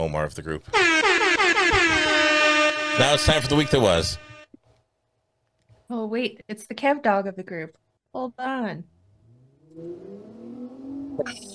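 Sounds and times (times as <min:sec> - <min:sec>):
speech: 0:00.0 - 0:02.0, 0:03.0 - 0:04.2, 0:05.9 - 0:08.9, 0:09.8 - 0:11.5
car accelerating and driving away: 0:08.9 - 0:11.5.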